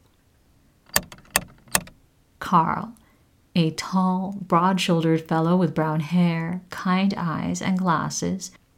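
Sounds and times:
large bronze dragonfly door knocker knocking on front door of a house: 0:00.9 - 0:02.0
speech: 0:02.5 - 0:03.0, 0:03.6 - 0:08.6.

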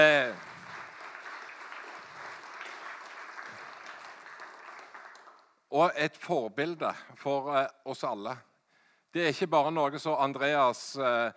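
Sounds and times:
audience applause of many hands clapping: 0:00.0 - 0:05.5
speech: 0:05.8 - 0:08.5, 0:09.2 - 0:11.3.

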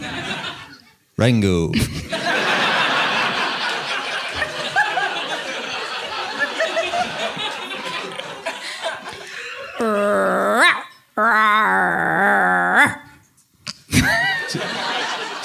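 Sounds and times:
laughter: 0:00.0 - 0:00.9, 0:01.8 - 0:10.5, 0:13.9 - 0:15.4
speech: 0:01.2 - 0:02.2
person imitating big cat growl with rumbling roars: 0:09.8 - 0:13.2.

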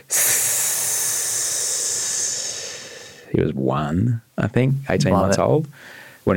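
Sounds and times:
hissing snake breath exhale as breathing exercise: 0:00.0 - 0:03.3
speech: 0:03.3 - 0:06.3.

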